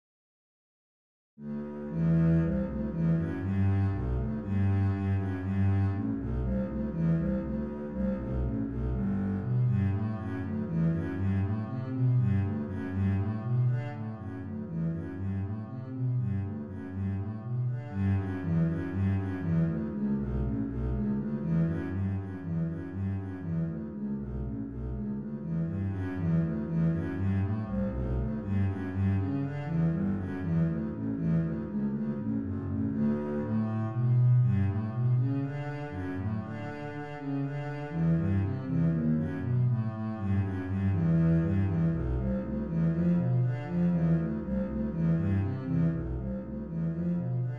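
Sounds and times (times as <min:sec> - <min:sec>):
bass etude: 0:01.4 - 0:47.5.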